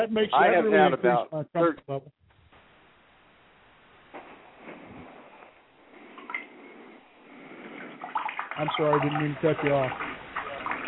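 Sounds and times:
speech: 0.0s - 2.2s, 8.6s - 10.1s
background water noise with splashy bursts: 7.3s - 10.8s.

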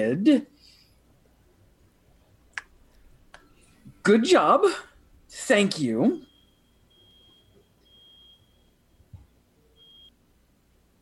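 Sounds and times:
speech: 0.0s - 0.5s, 4.0s - 6.3s
truck reversing beeper: 6.2s - 10.1s.

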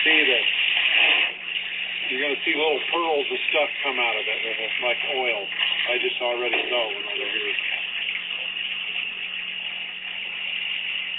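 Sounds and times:
water pouring out of a well: 0.0s - 11.1s
speech: 2.4s - 7.8s.

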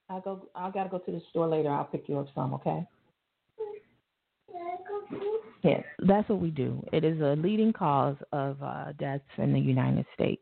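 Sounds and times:
speech: 0.1s - 3.0s, 5.1s - 10.4s
toddler girl babbling in a high-pitched voice: 3.6s - 3.8s, 4.5s - 5.6s.

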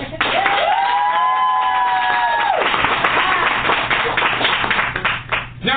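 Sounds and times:
high whoops from audience: 0.2s - 3.5s
audience clapping and cheering: 0.2s - 5.6s.

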